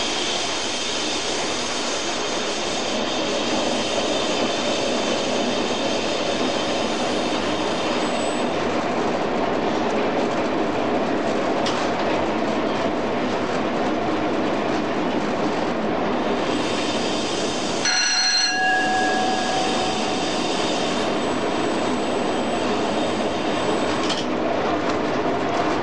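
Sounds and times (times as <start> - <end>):
moving train roaring along the rails: 0.0 - 25.8
metallic squeals and whines of train wheels braking: 17.9 - 23.2.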